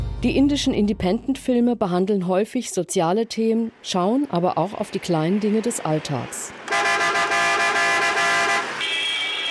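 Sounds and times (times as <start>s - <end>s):
speech: 0.2s - 6.6s
faint traffic noise: 2.7s - 9.4s
vehicle horns blaring in an Indian city: 6.7s - 9.4s.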